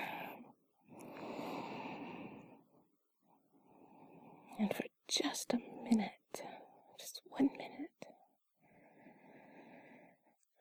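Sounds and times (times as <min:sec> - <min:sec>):
slow deep breathing close to the microphone: 0:00.0 - 0:02.8, 0:03.5 - 0:04.6, 0:08.6 - 0:10.4
speech: 0:04.6 - 0:06.5.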